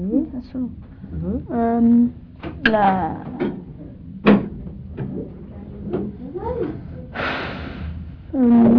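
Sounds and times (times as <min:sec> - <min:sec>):
speech: 0:00.0 - 0:03.6, 0:08.3 - 0:08.7
kitchen refrigerator door clunking and rattling: 0:04.2 - 0:05.2.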